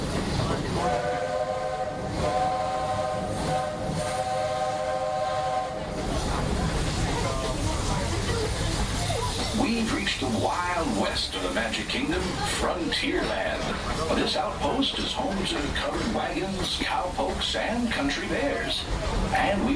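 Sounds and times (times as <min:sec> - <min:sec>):
steam train chugging at a theme park: 0:00.0 - 0:19.7
steam train whistle: 0:00.8 - 0:06.1
speech: 0:10.9 - 0:19.7.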